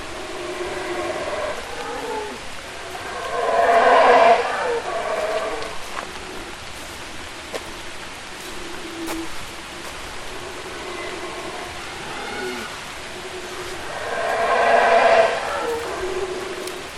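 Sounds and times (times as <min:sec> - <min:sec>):
howler monkey howling: 0:00.0 - 0:06.5, 0:10.0 - 0:16.9
steady background hiss: 0:00.0 - 0:16.9.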